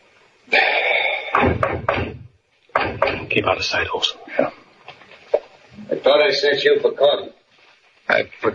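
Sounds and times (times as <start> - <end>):
firm knocking on a door: 1.4 - 3.4
speech: 3.4 - 4.6, 6.0 - 7.4, 8.1 - 8.5.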